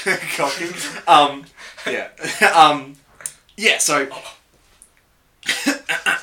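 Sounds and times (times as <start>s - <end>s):
laughter: 0.0s - 2.6s
speech: 0.0s - 3.0s, 3.6s - 4.4s
harsh coughing: 5.4s - 6.2s.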